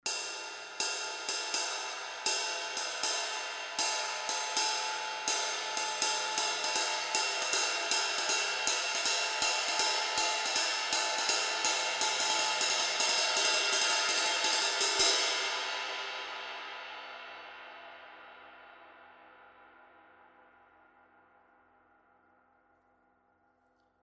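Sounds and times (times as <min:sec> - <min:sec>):
24-inch Zildjian medium ride cymbal playing a ride pattern: 0:00.0 - 0:16.4.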